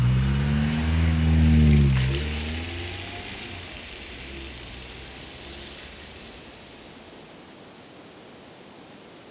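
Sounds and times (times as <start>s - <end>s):
waiting car engine revving and pulling away from a church: 0.0s - 7.1s
steady hiss: 0.0s - 9.3s.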